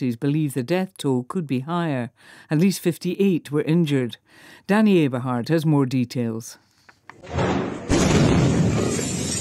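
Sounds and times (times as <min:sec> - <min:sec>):
speech: 0:00.0 - 0:07.7
explosion of pyrotechnic material at a military barracks in Viacha Bolivia: 0:07.2 - 0:09.3
windows breaking and shattering from a blast: 0:07.2 - 0:09.3.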